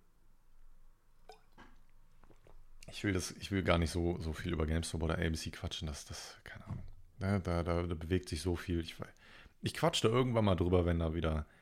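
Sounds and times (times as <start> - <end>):
low room noise: 0.0 - 11.6
soft swallow: 1.2 - 3.1
person sipping water: 1.2 - 3.2
speech: 2.9 - 11.6.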